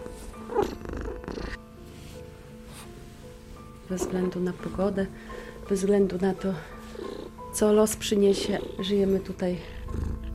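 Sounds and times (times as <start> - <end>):
cat purring: 0.1 - 1.6, 3.8 - 10.3
speech: 3.9 - 6.8, 7.6 - 10.0.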